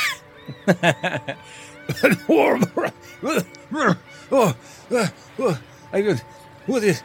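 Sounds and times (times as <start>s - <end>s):
laughter: 0.4s - 5.6s
person clearing throat: 1.9s - 3.5s
person coughing: 1.9s - 3.5s.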